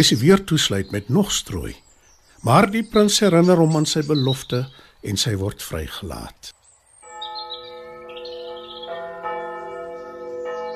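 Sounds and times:
speech: 0.0 - 6.6
faint birds chirping: 0.0 - 10.7
church bells ringing: 7.0 - 10.7.

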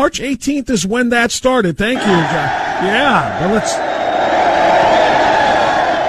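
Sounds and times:
speech: 0.0 - 4.4
crowd applause and cheering: 2.0 - 6.0.

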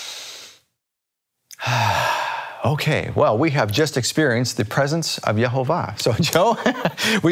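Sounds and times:
deep breath in and out ending in a voiced sigh: 0.0 - 0.7, 1.6 - 2.7
speech: 2.6 - 7.3
laughter: 6.1 - 7.3.

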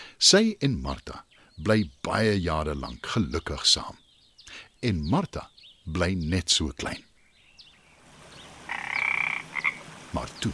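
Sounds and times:
speech: 0.2 - 7.1, 10.1 - 10.5
frog croaking: 8.6 - 9.9.

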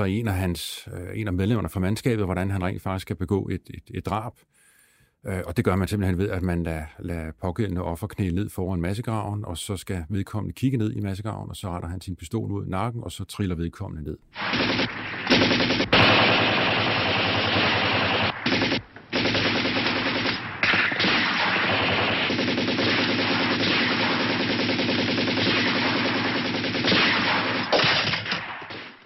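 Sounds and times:
speech: 0.0 - 4.6, 5.2 - 15.2
machine gun fire in a film firefight: 14.3 - 29.0
single gunshots in a film firefight: 14.4 - 29.0.

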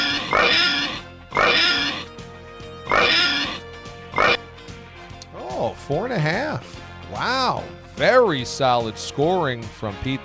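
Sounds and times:
people imitating squealing pig oinks: 0.0 - 2.1, 2.9 - 3.6, 4.2 - 4.4
speech: 5.9 - 10.2.

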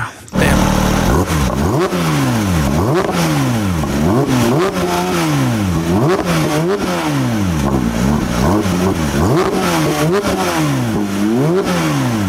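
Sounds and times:
car engine revving: 0.3 - 12.2.

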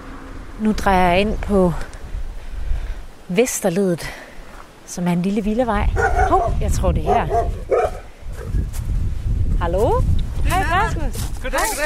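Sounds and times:
low rumble of outdoor noise: 0.0 - 11.8
speech: 0.6 - 2.0, 3.3 - 4.2, 4.9 - 7.9, 9.6 - 11.8
female dog barking excitedly: 6.0 - 8.1.

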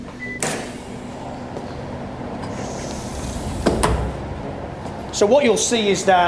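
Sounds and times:
steady low mechanical hum in a thermal ergonomics laboratory: 0.0 - 6.2
heavy insulated climate chamber door swinging open with a thud: 2.4 - 4.6
speech: 5.2 - 6.2.

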